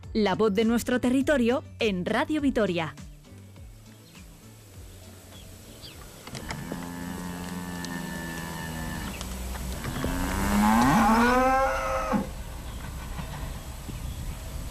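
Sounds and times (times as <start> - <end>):
faint outdoor background: 0.0 - 14.6
speech: 0.1 - 3.0
cattle mooing in long bellows: 6.3 - 12.4.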